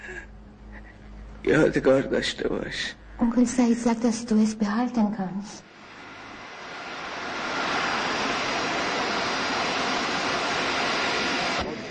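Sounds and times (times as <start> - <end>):
speech: 1.4 - 5.7
Iran Air airliner landing at an airport: 5.7 - 11.8.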